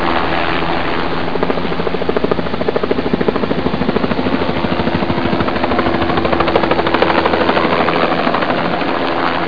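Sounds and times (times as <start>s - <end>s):
helicopter: 0.0s - 9.4s.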